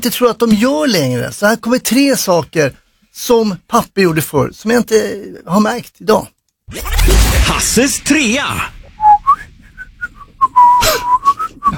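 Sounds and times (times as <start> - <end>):
speech: 0.0 - 8.8
person whistling a light meandering tune: 9.0 - 11.7.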